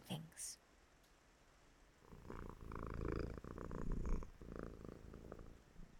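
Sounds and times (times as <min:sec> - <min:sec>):
speech: 0:00.4 - 0:00.6
cat purring while having its hair brushed: 0:02.0 - 0:05.9.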